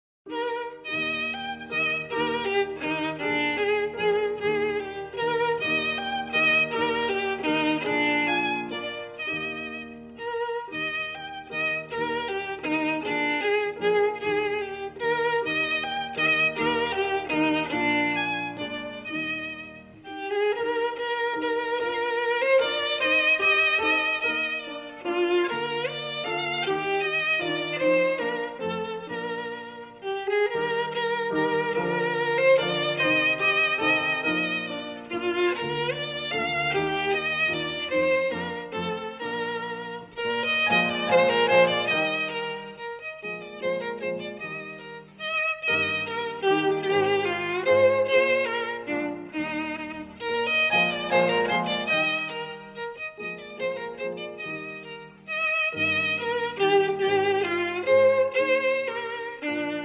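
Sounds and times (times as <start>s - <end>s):
violin playing a German dance: 0.3s - 59.8s.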